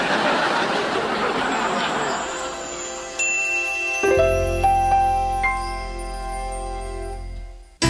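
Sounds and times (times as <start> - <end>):
laughter: 0.0 - 3.0
bell ringing clear lingering strikes: 1.5 - 7.8.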